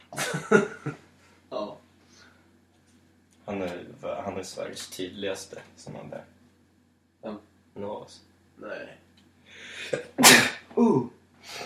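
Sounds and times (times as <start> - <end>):
speech: 0.5 - 1.0, 4.4 - 6.4, 7.2 - 9.0
sneeze: 10.2 - 11.0.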